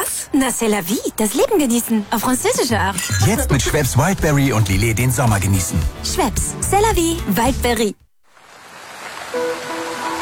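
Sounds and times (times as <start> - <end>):
speech: 0.4 - 8.0
rain falling on a forest: 8.2 - 10.2.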